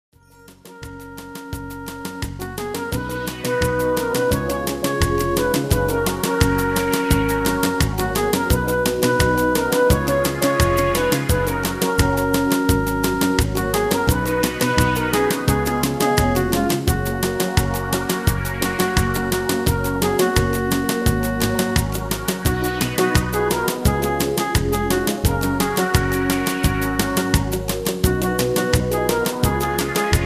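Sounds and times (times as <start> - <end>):
MIDI horn music sample: 0.4 - 30.2.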